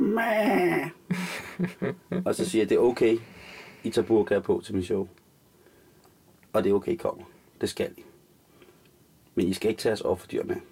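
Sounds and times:
human voice imitating a lamb bleat as a mobile phone ringtone: 0.0s - 1.0s
laughter: 1.1s - 2.5s
speech: 1.6s - 5.2s, 6.5s - 8.1s, 9.4s - 10.6s.

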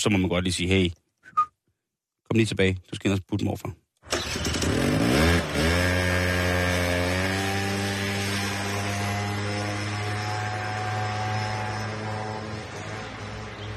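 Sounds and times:
speech: 0.0s - 1.4s, 2.3s - 3.8s
small two-stroke moped engine revving: 4.1s - 13.7s.

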